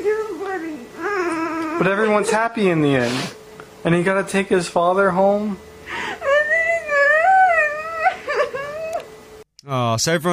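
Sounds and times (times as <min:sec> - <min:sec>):
woman crying in a high-pitched wail with gasping sobs: 0:01.0 - 0:02.5, 0:05.9 - 0:09.0
speech: 0:01.8 - 0:06.0, 0:09.7 - 0:10.3.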